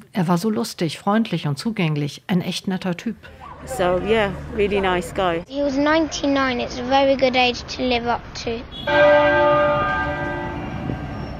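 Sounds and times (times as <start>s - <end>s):
speech: 0.2s - 9.8s
single church bell tolling: 8.9s - 11.3s.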